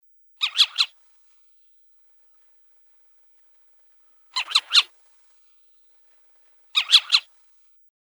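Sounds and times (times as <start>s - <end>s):
little owl calls: 0.4s - 1.0s, 4.3s - 5.0s, 6.8s - 7.4s.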